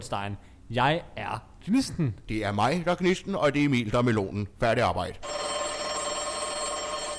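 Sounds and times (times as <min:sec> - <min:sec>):
speech: 0:00.0 - 0:05.4
telephone bell ringing with a metallic trill: 0:05.2 - 0:07.1.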